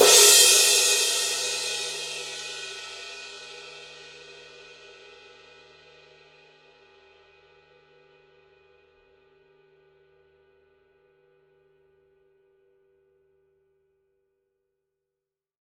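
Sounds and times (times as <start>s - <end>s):
20 heavy crash cymbal edge hit: 0.0s - 4.3s.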